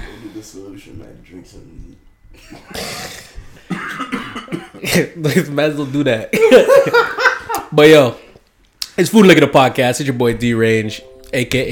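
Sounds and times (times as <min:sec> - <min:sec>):
speech: 0:00.4 - 0:08.2, 0:09.0 - 0:11.7
person coughing: 0:02.4 - 0:05.3
laughter: 0:06.4 - 0:07.7.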